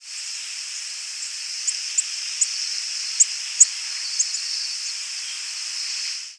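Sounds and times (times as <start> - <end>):
steady hissing background: 0.0 - 6.3
Tennessee warbler giving very high thin chip notes: 1.2 - 6.1.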